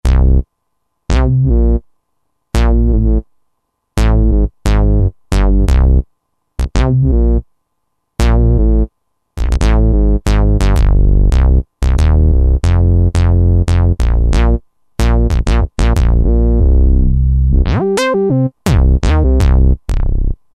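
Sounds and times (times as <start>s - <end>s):
arpeggiated hip hop bass on Roland SR-JV80-12: 0.0s - 0.5s, 1.1s - 1.8s, 2.5s - 3.3s, 4.0s - 7.5s, 8.2s - 20.5s.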